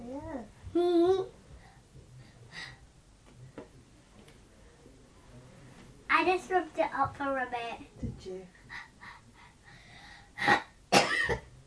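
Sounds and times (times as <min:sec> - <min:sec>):
speech: 0:06.3 - 0:08.8
raspy coughs: 0:10.4 - 0:11.5.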